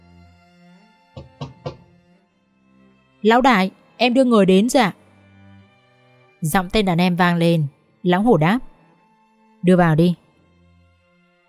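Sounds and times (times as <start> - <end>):
dull knocks on a door: 1.2 - 1.9
speech: 3.2 - 5.0, 6.4 - 8.7, 9.6 - 10.2.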